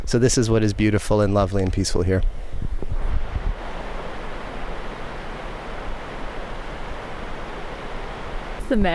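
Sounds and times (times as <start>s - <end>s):
low wind buffeting on the microphone: 0.0s - 8.9s
speech: 0.1s - 2.7s, 8.7s - 8.9s
river water flowing: 2.3s - 8.9s.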